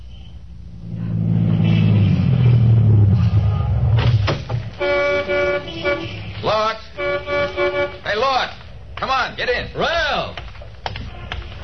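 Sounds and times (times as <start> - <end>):
Cadillac sedan engine rumbling low as it pulls to a stop: 0.0 - 9.2
bright Cadillac sedan horn toot: 4.7 - 8.2.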